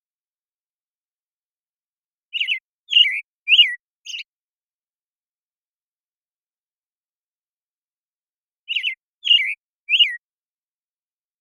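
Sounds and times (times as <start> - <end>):
American Robin morning song in the Pacific Northwest, Washington, United States: 2.3 - 4.3, 8.7 - 10.2.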